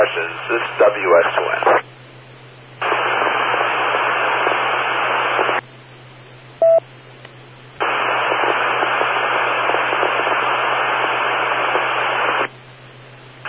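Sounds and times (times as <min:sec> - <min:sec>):
speech: 0:00.0 - 0:02.0
harsh hissing radio static from an open channel: 0:00.0 - 0:05.7, 0:07.8 - 0:13.4
steady low hum: 0:00.0 - 0:13.4
short electronic beep: 0:06.6 - 0:06.8.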